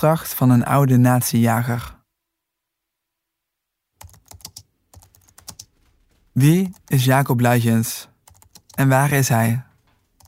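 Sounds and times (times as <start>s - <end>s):
speech: 0.0s - 2.0s, 6.4s - 8.1s, 8.8s - 9.7s
typing a name into an internet search on a computer keyboard: 4.0s - 6.0s, 8.2s - 8.8s, 9.8s - 10.2s.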